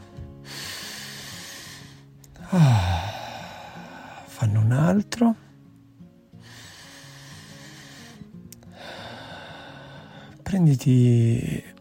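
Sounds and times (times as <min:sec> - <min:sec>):
soft sustained musical drone: 0:00.0 - 0:11.8
deep breath in and out: 0:00.4 - 0:04.3, 0:06.4 - 0:10.4
speech: 0:02.5 - 0:02.7, 0:04.7 - 0:05.4, 0:10.5 - 0:11.8.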